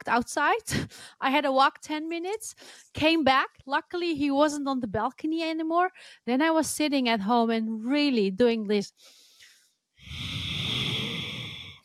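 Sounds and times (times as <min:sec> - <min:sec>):
speech: 0:00.0 - 0:09.2, 0:10.0 - 0:10.5
person breathing heavily and angrily: 0:09.0 - 0:11.8.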